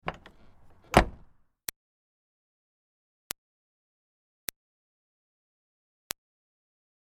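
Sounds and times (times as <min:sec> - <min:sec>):
2005 Smartcar Fortwo door opening and closing lightly: 0:00.0 - 0:01.3.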